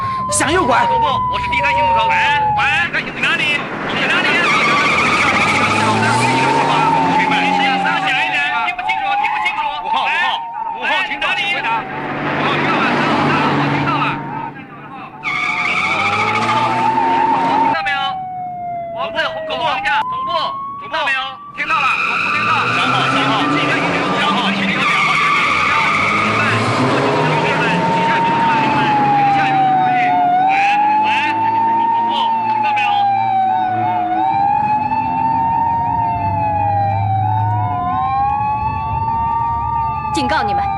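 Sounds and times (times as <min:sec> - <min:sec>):
rumbling vehicle noise: 0:00.0 - 0:40.7
speech: 0:00.3 - 0:05.0, 0:11.0 - 0:12.2, 0:19.1 - 0:23.9
car tires skidding during police car chase: 0:01.6 - 0:17.9, 0:21.6 - 0:37.5.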